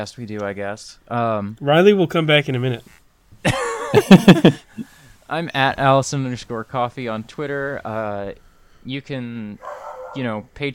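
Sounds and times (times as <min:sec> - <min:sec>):
speech: 0:00.0 - 0:10.7
laughter: 0:03.4 - 0:04.8
dog barking: 0:09.6 - 0:10.3.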